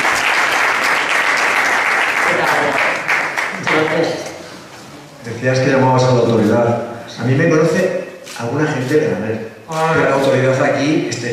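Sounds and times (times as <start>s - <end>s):
audience applause at a public event welcoming a guest: 0.0s - 4.2s
speech: 5.4s - 11.3s.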